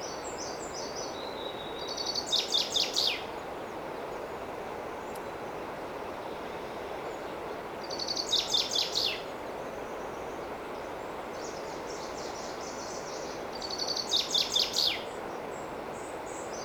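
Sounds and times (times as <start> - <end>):
common chaffinch Fringilla coelebs singing: 0.0 - 3.3, 7.8 - 9.3, 11.3 - 16.6
steady hiss: 0.0 - 16.6.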